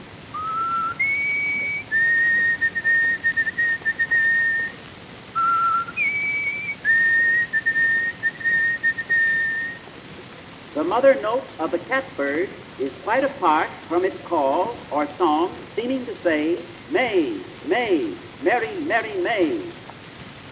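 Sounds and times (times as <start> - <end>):
faint hiss: 0.0 - 20.4
white-throated sparrow clear whistled song: 0.4 - 4.7, 5.4 - 9.8
speech: 10.9 - 19.8.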